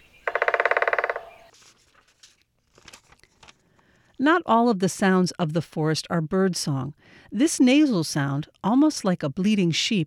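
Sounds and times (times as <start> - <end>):
woodpecker drumming on a tree trunk in a forest: 0.0 - 1.6
speech: 4.2 - 10.0.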